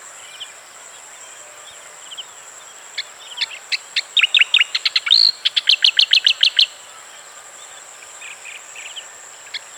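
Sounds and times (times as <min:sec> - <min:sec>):
Striated grassbird chirping song: 0:03.3 - 0:06.8.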